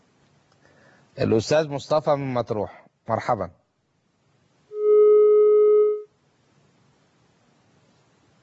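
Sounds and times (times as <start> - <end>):
speech: 1.2 - 3.6
steady electronic telephone tone after a line drops: 4.7 - 6.1.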